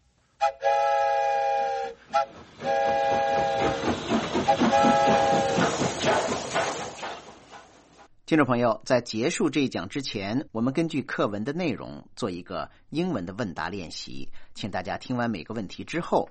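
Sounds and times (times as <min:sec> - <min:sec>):
whistle blown in long shrill blasts: 0:00.4 - 0:05.8
speech: 0:08.3 - 0:16.3.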